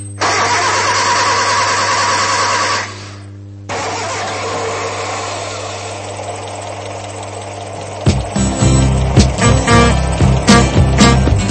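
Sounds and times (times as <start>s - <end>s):
steady mechanical drone: 0.0s - 11.4s
old car engine starting with sputtering pulses: 0.2s - 11.4s.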